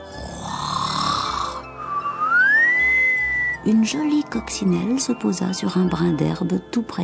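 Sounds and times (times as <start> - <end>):
person snoring: 0.0 - 2.9
speech: 3.6 - 7.0.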